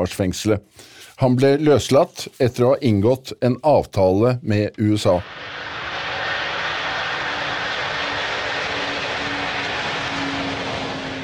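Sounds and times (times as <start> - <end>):
speech: 0.0 - 5.7
airplane engine drone in flight: 5.2 - 11.2.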